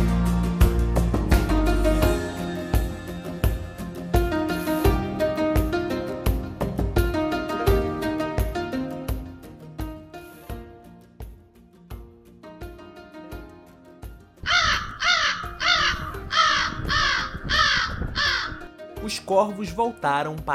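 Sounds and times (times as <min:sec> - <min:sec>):
short melodic instrumental phrase: 0:00.0 - 0:20.5
crow cawing: 0:14.4 - 0:18.7
speech: 0:19.3 - 0:20.5.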